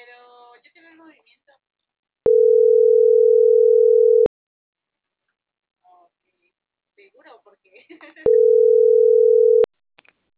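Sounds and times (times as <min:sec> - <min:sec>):
telephone busy tone after a dropped call: 0:02.3 - 0:04.3, 0:08.3 - 0:09.7.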